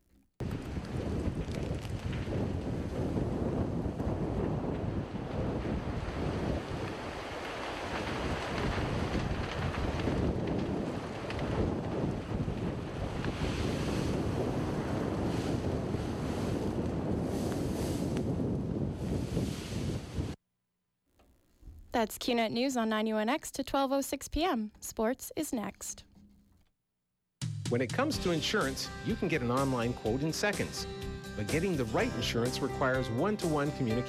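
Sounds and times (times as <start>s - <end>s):
wildfires burning in the Los Angeles area: 0.1s - 20.4s, 28.2s - 34.0s
strong wind roaring around wildfires in the Los Angeles area: 0.4s - 20.4s
speech: 22.0s - 26.1s, 27.7s - 34.0s.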